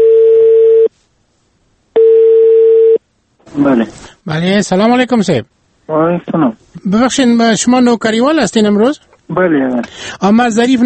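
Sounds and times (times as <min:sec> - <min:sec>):
telephone ringback tone before call is answered: 0:00.0 - 0:00.9, 0:02.0 - 0:03.0
speech: 0:03.6 - 0:10.8.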